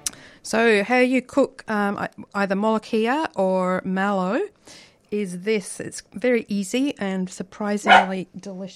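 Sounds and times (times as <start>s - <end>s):
speech: 0.4s - 8.7s
dog barking: 7.9s - 8.2s.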